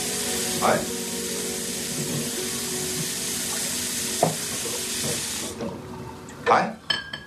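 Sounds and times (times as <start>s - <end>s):
kitchen tap water running while washing dishes: 0.0s - 6.5s
speech: 0.6s - 1.0s, 6.5s - 6.8s
sharp clink of crockery: 6.5s - 7.2s.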